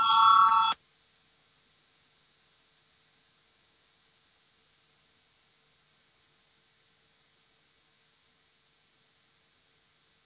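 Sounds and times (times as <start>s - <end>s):
loud electric voting bell ringing in a parliament chamber: 0.0s - 0.8s.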